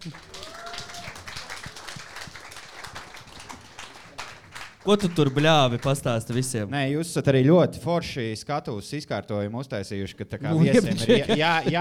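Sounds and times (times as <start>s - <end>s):
speech: 0.0s - 0.3s, 4.8s - 11.8s
person cheering: 0.0s - 1.5s, 10.7s - 11.8s
crowd applauding to welcome a guest: 0.0s - 6.7s, 11.0s - 11.8s
laughter: 10.4s - 11.8s.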